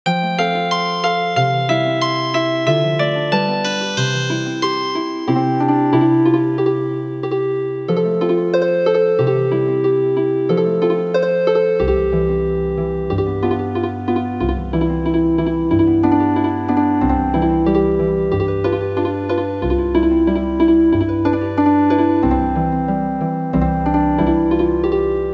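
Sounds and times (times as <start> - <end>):
healing harp music: 0.1 - 25.3.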